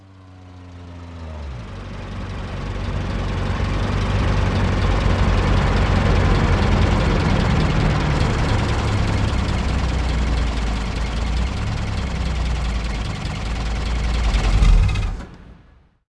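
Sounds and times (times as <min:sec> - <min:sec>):
car: 0:00.0 - 0:15.9.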